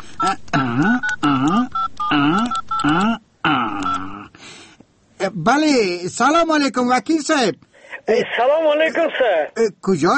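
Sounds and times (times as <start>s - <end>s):
telephone keypad tones as a phone is dialed: 0.2s - 3.0s, 3.7s - 4.1s
speech: 0.2s - 3.2s, 5.4s - 10.1s.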